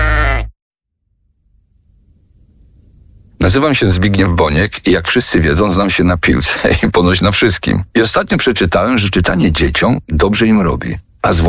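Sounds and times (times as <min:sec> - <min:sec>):
sheep bleating: 0:00.0 - 0:00.5
speech: 0:03.4 - 0:11.4.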